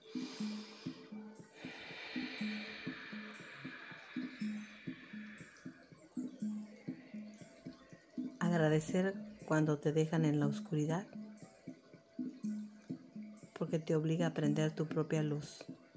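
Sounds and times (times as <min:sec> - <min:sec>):
deep breathing in and out: 0:00.0 - 0:07.6
soft steady rhythmic music: 0:00.0 - 0:15.9
speech: 0:08.5 - 0:11.2, 0:13.7 - 0:15.7.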